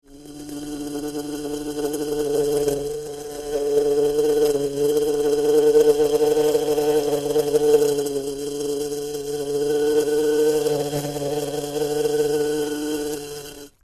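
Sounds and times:
bumblebee buzzing: 0:00.1 - 0:13.8.

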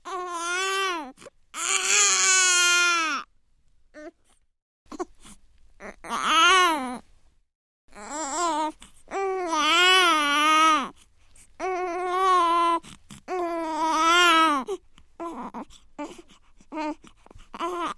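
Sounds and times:
newborn crying: 0:00.0 - 0:03.3, 0:05.8 - 0:07.0, 0:07.9 - 0:10.9, 0:11.6 - 0:17.9.

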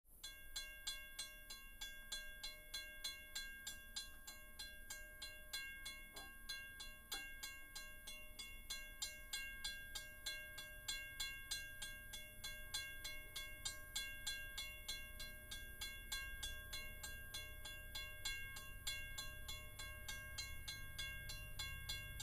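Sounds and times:
railway crossing signal: 0:00.2 - 0:22.2.

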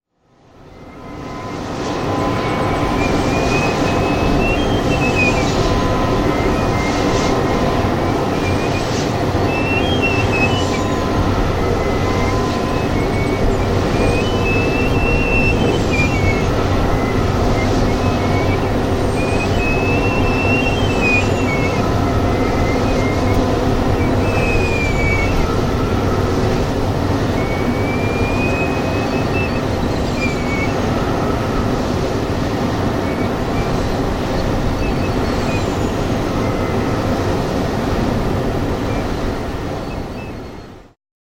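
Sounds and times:
wind turbine: 0:00.1 - 0:41.0.

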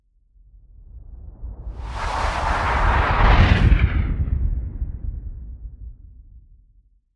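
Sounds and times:
meteorite asteroid sounds: 0:01.7 - 0:05.1.

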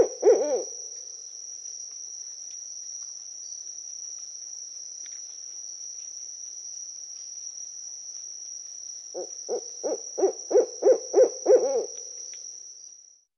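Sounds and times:
owl hooting rapidly: 0:00.0 - 0:00.8, 0:09.2 - 0:12.0.

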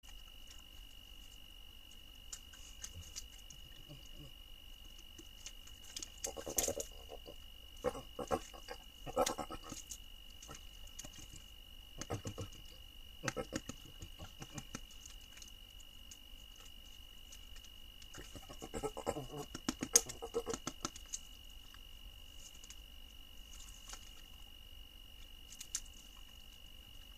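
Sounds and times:
peccary sounds: 0:06.1 - 0:11.4, 0:12.0 - 0:15.0, 0:18.1 - 0:21.0.

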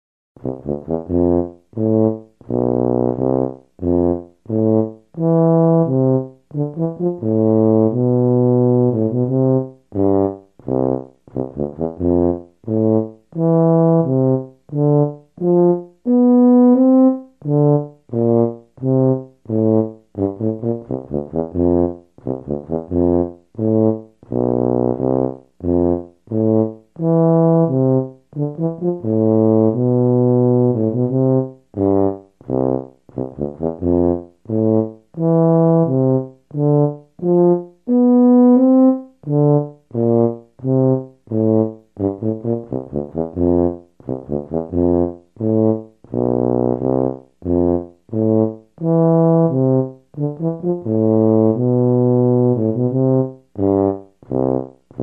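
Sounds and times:
tuba: 0:00.4 - 0:55.0.

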